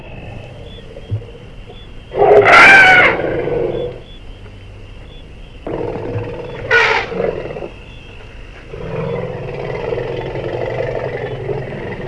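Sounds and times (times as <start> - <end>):
elephant trumpeting: 2.1 - 3.9, 6.6 - 7.7.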